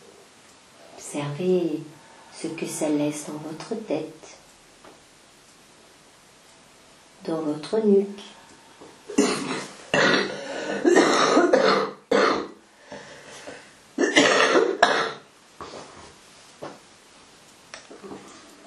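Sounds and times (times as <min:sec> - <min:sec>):
speech: 0:01.1 - 0:04.4, 0:07.2 - 0:08.4
quieter breathy sounds: 0:08.2 - 0:10.9, 0:12.7 - 0:13.8
person coughing harshly: 0:09.1 - 0:12.5, 0:14.0 - 0:15.2.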